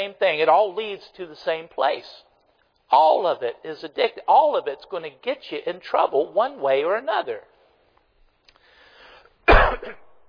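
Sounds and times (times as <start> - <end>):
speech: 0.0 - 2.3, 2.9 - 7.5, 9.6 - 10.0
man clearing throat: 9.5 - 10.1
man coughing: 9.5 - 10.2.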